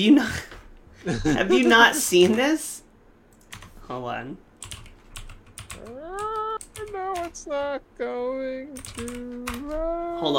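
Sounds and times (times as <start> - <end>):
speech: 0.0 - 2.8, 3.9 - 4.4, 6.9 - 10.3
typing on a computer keyboard: 3.3 - 3.7, 4.6 - 7.4, 8.8 - 9.8.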